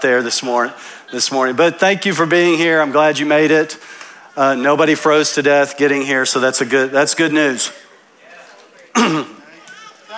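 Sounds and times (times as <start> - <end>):
speech: 0.0 - 7.9, 9.0 - 9.4
throat clearing into the microphone: 8.9 - 9.4.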